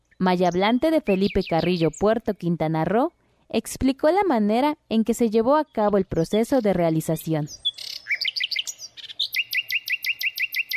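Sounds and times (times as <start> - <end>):
bird singing warbling notes and chirps: 0.0 - 2.3, 5.4 - 10.7
speech: 0.2 - 7.7.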